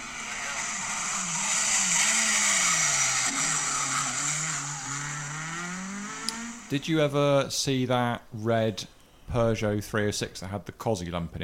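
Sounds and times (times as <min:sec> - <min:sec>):
Mark II Escort rally car engine roaring and revving: 0:00.0 - 0:06.8
speech: 0:06.7 - 0:11.4.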